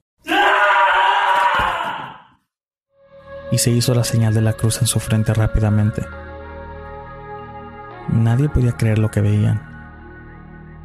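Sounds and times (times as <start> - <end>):
man screaming nervously: 0.2 - 2.3
speech: 3.5 - 6.3, 8.1 - 9.7.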